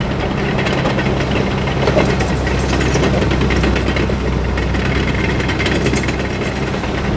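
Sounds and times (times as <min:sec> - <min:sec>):
construction ambience: 0:00.0 - 0:07.1.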